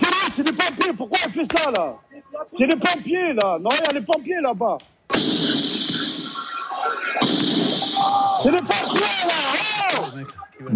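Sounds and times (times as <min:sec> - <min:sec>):
speech: 0:00.4 - 0:06.0, 0:06.8 - 0:10.7
firework mortars fired at firefighters: 0:05.1 - 0:10.1.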